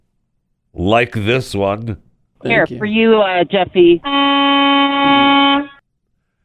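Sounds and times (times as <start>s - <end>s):
speech: 0.8s - 4.2s
truck air horn honking: 4.0s - 5.8s.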